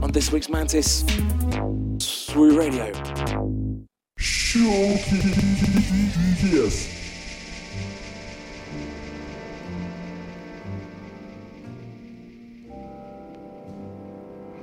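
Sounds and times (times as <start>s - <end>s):
speech: 0.1s - 3.5s, 4.2s - 7.0s
steady rain: 5.0s - 13.6s.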